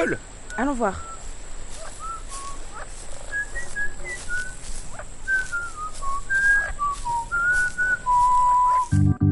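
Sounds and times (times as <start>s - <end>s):
speech: 0.0s - 1.1s
melodic whistling voice from inside an island: 0.5s - 1.2s, 2.0s - 2.7s, 3.3s - 4.6s, 5.3s - 9.2s.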